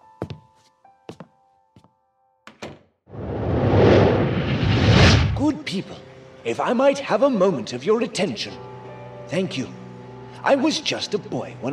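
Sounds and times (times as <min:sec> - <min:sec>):
wooden door closing with a creak: 0:02.5 - 0:02.9
loud steady rushing noise: 0:03.1 - 0:05.5
speech: 0:05.7 - 0:08.7, 0:09.3 - 0:09.8, 0:10.4 - 0:11.7.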